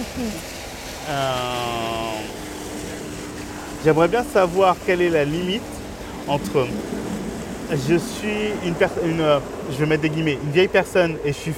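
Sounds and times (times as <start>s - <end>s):
boat engine passing by: 0.0s - 11.5s
speech: 0.2s - 1.9s, 3.8s - 5.7s, 6.3s - 7.0s, 7.7s - 11.5s.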